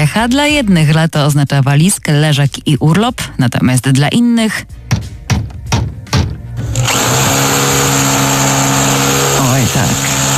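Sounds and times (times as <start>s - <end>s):
speech: 0.1s - 5.1s, 9.6s - 10.1s
heavy thuds during home renovation: 4.8s - 6.7s
power drill whirring during home renovation: 6.6s - 10.3s.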